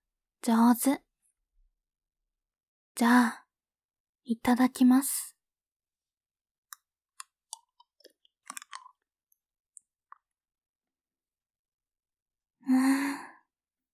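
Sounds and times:
speech: 0:00.4 - 0:01.0, 0:03.0 - 0:03.4, 0:04.3 - 0:05.3, 0:12.7 - 0:13.3
wet licking mouth sounds: 0:08.4 - 0:08.9
longer breathy sigh: 0:12.6 - 0:13.5.

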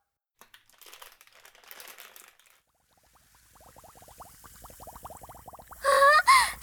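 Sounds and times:
bath additive plastic packet crinkling and tearing open: 0:00.4 - 0:02.6
bath additive pouring into bathwater: 0:00.4 - 0:06.6
bathwater bubbling and fizzing from bath additive: 0:02.7 - 0:06.6.

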